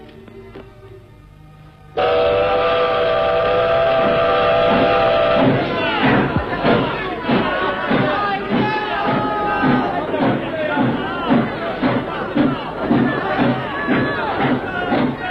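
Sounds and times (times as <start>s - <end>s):
departing train whistle: 2.0s - 6.4s
departing train puffs and clanks: 2.0s - 15.3s.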